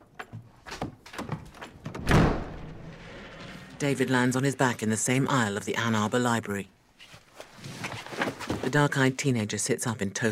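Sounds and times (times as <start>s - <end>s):
bedroom door with a chain bursting open: 1.9s - 3.8s
speech: 3.8s - 6.8s, 8.7s - 10.3s.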